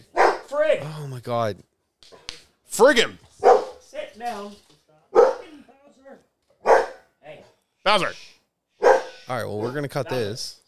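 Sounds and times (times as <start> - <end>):
dog barking: 0.0 - 0.5, 3.4 - 3.8, 5.1 - 5.5, 6.6 - 7.1, 8.8 - 9.8
speech: 0.6 - 3.3, 4.2 - 4.7, 7.3 - 8.3, 9.3 - 10.6.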